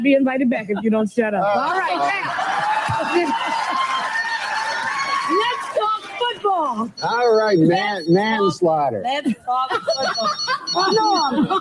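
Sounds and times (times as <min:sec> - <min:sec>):
people talking loudly: 0:00.0 - 0:03.5, 0:05.2 - 0:11.5
speech: 0:00.0 - 0:04.1, 0:06.7 - 0:11.5
laughter: 0:01.8 - 0:06.2, 0:07.1 - 0:08.6, 0:09.5 - 0:11.5
telephone ringing with a high electronic trill: 0:06.9 - 0:08.6, 0:09.8 - 0:11.5.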